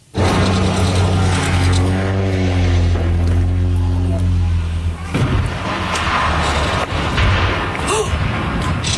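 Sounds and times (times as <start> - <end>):
low seaplane propeller engine roaring: 0.0 - 8.9
tourist seaplane crashing into the rocky shoreline of a small island: 0.0 - 8.9.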